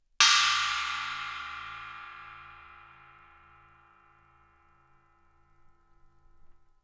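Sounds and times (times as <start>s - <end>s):
Chinese cymbals: 0.2s - 5.8s.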